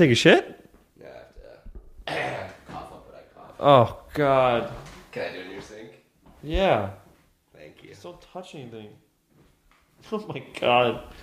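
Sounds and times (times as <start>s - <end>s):
speech: 0.0s - 0.6s, 3.6s - 5.4s, 6.4s - 7.0s, 8.0s - 9.0s, 10.0s - 11.2s
person clearing their throat with guttural rasp: 2.0s - 2.8s.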